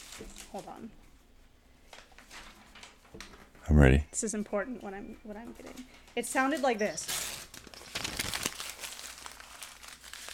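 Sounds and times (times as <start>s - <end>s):
paper crumpling: 0.0s - 0.9s, 1.9s - 3.4s, 5.6s - 10.3s
speech: 0.5s - 1.1s, 3.1s - 7.2s.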